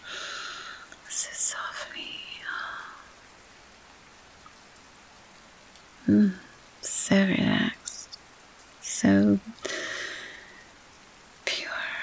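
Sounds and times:
rain pattering: 0.0 - 12.0
person whispering: 1.1 - 3.1, 6.0 - 8.2, 11.5 - 12.0
speech: 6.1 - 6.4.

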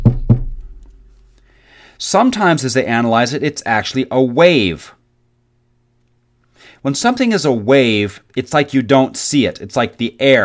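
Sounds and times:
knuckles knocking on a solid wooden desk: 0.0 - 0.7
speech: 2.0 - 5.0, 6.8 - 10.4.

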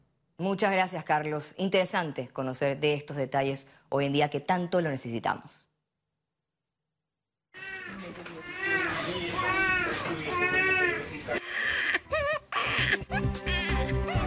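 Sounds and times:
speech: 0.4 - 5.6
bustle: 7.6 - 11.5
Ukrainian infants awaiting adoptive parents crying: 7.6 - 14.2.

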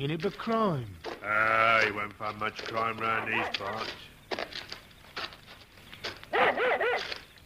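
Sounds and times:
speech: 0.0 - 4.1
dog barking excitedly: 3.0 - 4.0, 6.3 - 7.2.

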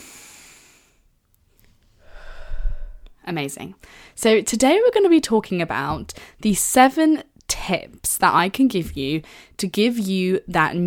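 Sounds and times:
deep breath: 0.0 - 1.1, 1.9 - 3.2, 3.8 - 4.2, 9.2 - 9.6
speech: 3.3 - 10.8.

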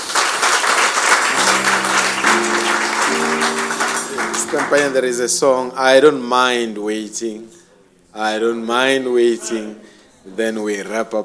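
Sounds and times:
audience applause: 0.0 - 5.1
sustained organ-like keyboard chords: 1.3 - 6.8
speech: 4.5 - 7.6, 8.2 - 11.2.

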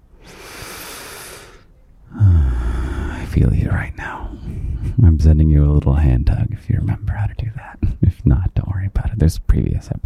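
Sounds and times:
slow deep breath in and out: 0.0 - 5.0
speech: 3.4 - 10.0.

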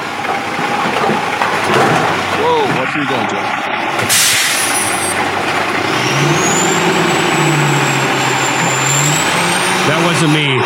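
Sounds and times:
garbage truck diesel engine idling: 0.0 - 10.6
speech: 2.4 - 5.5, 9.9 - 10.6
garbage truck air brake hiss: 4.1 - 4.8.

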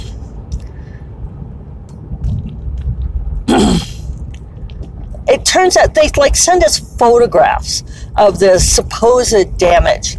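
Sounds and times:
road rumble inside a car cruising at highway speed: 0.0 - 10.1
person clearing throat: 3.4 - 4.0
speech: 5.3 - 10.1.

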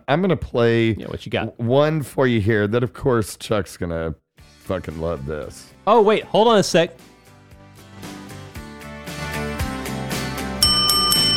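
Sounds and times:
speech: 0.1 - 7.1
music with steady rhythmic notes: 8.7 - 11.3
bright bell-like ring: 10.6 - 11.3.

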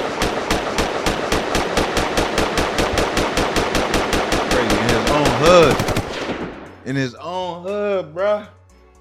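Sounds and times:
gunshots fired as a gun salute for a dead man: 0.0 - 6.9
speech: 5.5 - 5.9, 6.9 - 8.6.

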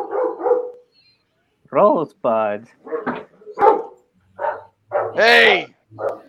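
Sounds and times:
dog barking: 0.0 - 0.9, 2.8 - 6.2
speech: 1.7 - 3.3, 5.2 - 6.2.

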